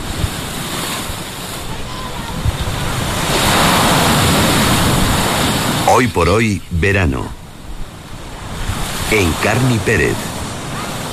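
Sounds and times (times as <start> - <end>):
gusty wind buffeting the microphone: 0.0 - 5.9, 7.3 - 9.1
ocean waves breaking on a beach: 0.0 - 11.1
speech: 6.0 - 7.4, 9.1 - 10.3.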